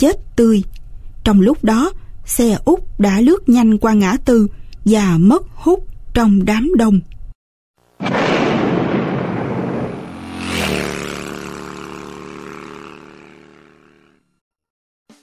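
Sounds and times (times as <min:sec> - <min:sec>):
speech: 0:00.0 - 0:07.1
explosions rocking Saigon: 0:08.0 - 0:11.2.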